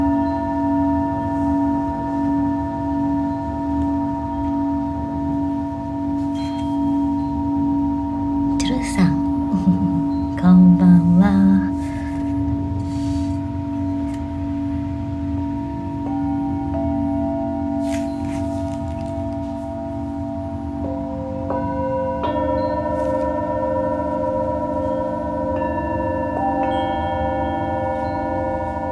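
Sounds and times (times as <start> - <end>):
Tibetan singing bowls ringing in Mexico: 0.0 - 28.9
wavering bending note: 0.0 - 28.9.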